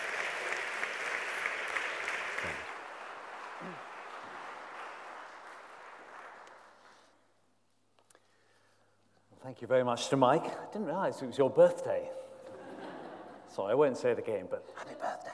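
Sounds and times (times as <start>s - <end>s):
large crowd applauding in a reverberant hall: 0.0s - 7.2s
speech: 9.5s - 12.2s, 13.6s - 15.3s.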